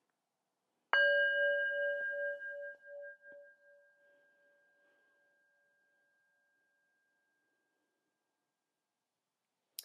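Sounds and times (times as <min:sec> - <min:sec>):
singing bowl struck and ringing: 0:01.0 - 0:07.4.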